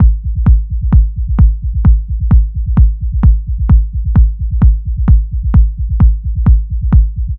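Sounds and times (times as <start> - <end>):
rolling drum machine kick drum loop: 0.0 - 7.3.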